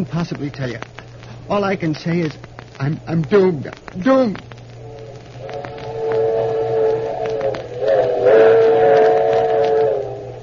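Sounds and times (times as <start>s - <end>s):
speech: 0.0s - 4.5s
train rumble with rhythmic clacks: 0.0s - 10.4s
sustained wavering train whistle: 4.8s - 10.4s.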